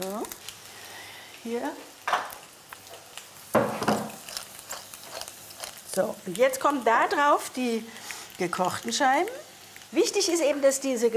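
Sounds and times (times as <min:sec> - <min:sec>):
faint steady sizzle: 0:00.0 - 0:11.1
speech: 0:01.4 - 0:01.9, 0:06.0 - 0:11.1
food placed back into a frying pan: 0:02.1 - 0:06.1.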